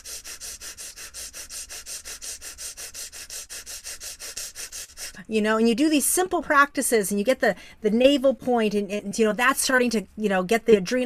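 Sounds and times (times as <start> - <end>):
rapid breathing with the teeth held together in a smile: 0.0 - 5.3
speech: 5.2 - 11.0.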